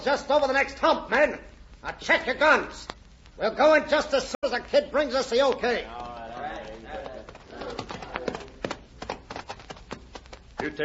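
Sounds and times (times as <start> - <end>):
speech: 0.0 - 6.0, 10.6 - 10.8
horses' hooves clip-clopping: 5.4 - 10.8.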